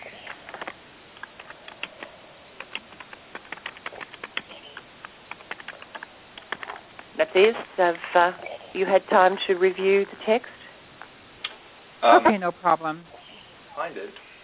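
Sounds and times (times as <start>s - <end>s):
computer keyboard typing a reply: 0.2s - 6.7s
speech: 7.2s - 10.6s, 12.0s - 13.1s, 13.8s - 14.2s.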